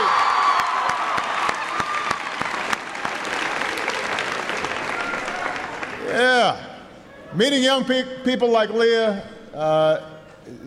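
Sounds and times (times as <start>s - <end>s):
high school student audience applause: 0.0s - 6.1s
speech: 7.4s - 10.6s.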